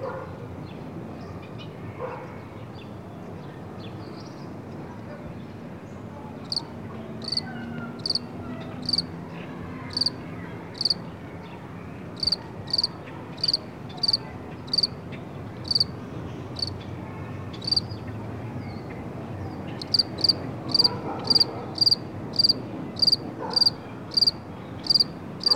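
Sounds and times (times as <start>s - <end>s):
low rumble of traffic: 0.0s - 25.5s
cricket chirping outdoors: 7.2s - 7.4s, 8.0s - 8.2s, 8.8s - 9.1s, 9.9s - 10.1s, 10.8s - 11.0s, 12.2s - 14.9s, 15.6s - 15.9s, 17.6s - 17.8s, 19.8s - 25.5s.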